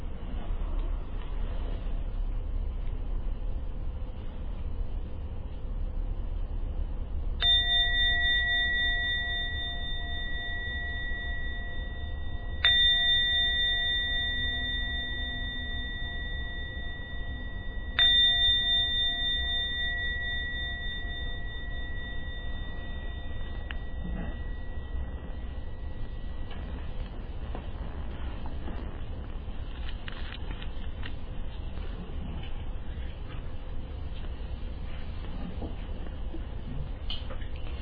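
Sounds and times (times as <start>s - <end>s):
low steady hum: 0.0s - 37.8s
meditation bell strikes: 7.4s - 28.9s.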